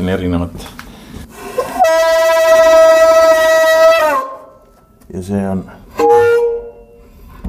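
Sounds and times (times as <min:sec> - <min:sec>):
speech: 0:00.1 - 0:00.8, 0:05.1 - 0:06.1
pulled fog horn blast: 0:01.6 - 0:04.6, 0:05.9 - 0:07.1.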